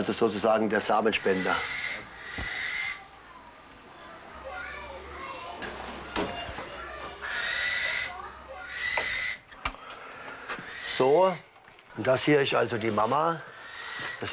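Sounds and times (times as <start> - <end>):
speech: 0.0 - 2.1, 11.0 - 13.5, 14.2 - 14.3
eagle giving shrill screeching calls: 1.1 - 3.1, 7.2 - 9.6, 10.6 - 11.5, 13.4 - 14.3.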